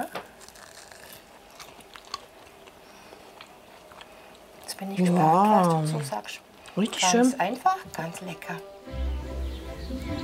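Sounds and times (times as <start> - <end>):
crunching bites and chewing on freshly cooked hot food: 0.0 - 7.4
low room hiss: 0.0 - 10.2
speech: 4.8 - 8.7.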